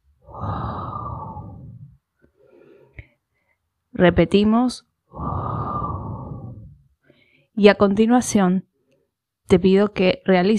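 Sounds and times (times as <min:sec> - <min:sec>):
forceful breathy exhale through pursed lips during a breathing exercise: 0:00.2 - 0:03.6, 0:05.1 - 0:07.5
soft breath: 0:00.2 - 0:03.7, 0:05.1 - 0:07.6
speech: 0:04.0 - 0:04.9, 0:07.6 - 0:08.7, 0:09.5 - 0:10.5.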